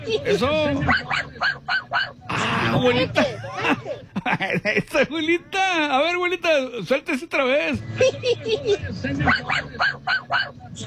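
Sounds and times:
faint voices murmuring: 0:00.0 - 0:05.7, 0:07.5 - 0:10.8
speech: 0:00.0 - 0:10.8
small dog yapping: 0:00.9 - 0:02.2, 0:09.3 - 0:10.6
laughter: 0:02.3 - 0:05.2, 0:07.9 - 0:10.4.

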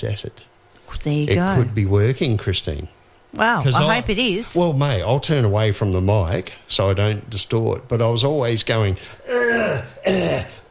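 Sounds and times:
speech: 0:00.0 - 0:10.6
man clearing his throat: 0:09.2 - 0:10.6.

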